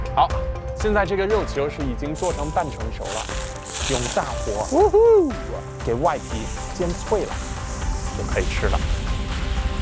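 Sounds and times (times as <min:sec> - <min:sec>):
man talking: 0:00.2 - 0:07.4, 0:08.2 - 0:08.9
half-cooked meatballs sizzling in a hot pan over high heat: 0:02.2 - 0:09.7.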